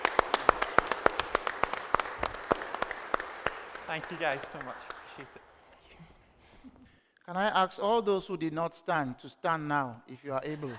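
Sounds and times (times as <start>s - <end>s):
small crowd applauding: 0.0s - 5.6s
speech: 3.9s - 5.5s, 7.3s - 10.7s.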